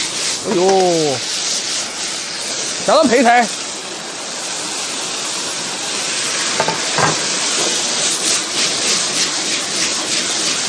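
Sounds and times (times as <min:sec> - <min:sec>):
pork intestines sizzling in a light wok: 0:00.0 - 0:10.6
speech: 0:00.4 - 0:01.4, 0:02.9 - 0:03.6
knocks and scrapes of a wok being tossed: 0:06.4 - 0:10.6.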